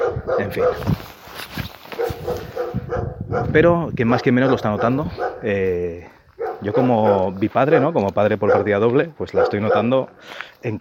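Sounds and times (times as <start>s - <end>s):
dog barking persistently: 0.0s - 0.9s, 2.0s - 3.6s, 4.4s - 5.5s, 6.4s - 10.0s
speech: 0.2s - 1.6s, 3.5s - 10.7s.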